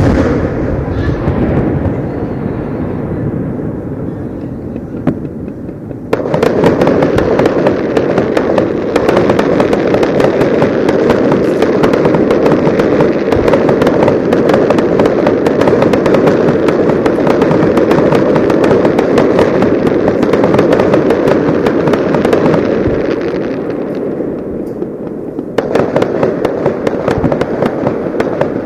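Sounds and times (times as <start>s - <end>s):
fireworks booms and crackles over open water: 0.0s - 28.6s
faint voices: 0.8s - 5.8s
rapid sharp fireworks pops: 4.7s - 28.6s.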